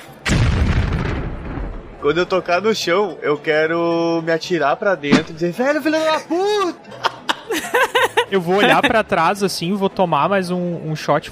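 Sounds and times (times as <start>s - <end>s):
explosion: 0.2s - 2.3s
speech: 2.0s - 11.3s
laughter: 6.3s - 9.1s.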